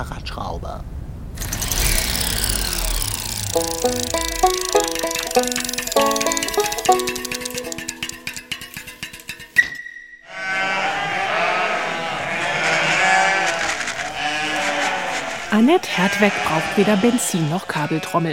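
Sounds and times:
speech: 0:00.0 - 0:01.0, 0:03.5 - 0:06.2, 0:06.9 - 0:07.3, 0:15.6 - 0:18.3
stepped tonal electronic notes: 0:01.5 - 0:09.3
Moorschnucke sheep bleating: 0:10.3 - 0:15.2, 0:15.9 - 0:18.2.

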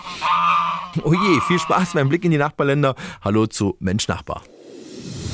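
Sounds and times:
goose honking: 0:00.0 - 0:02.2
speech: 0:01.0 - 0:05.2.

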